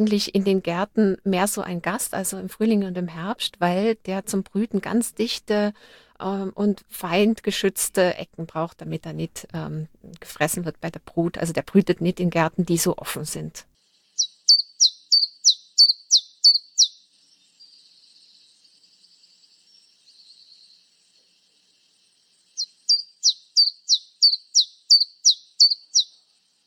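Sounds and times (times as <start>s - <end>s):
speech: 0.0s - 13.7s
common chiffchaff singing: 13.9s - 26.6s.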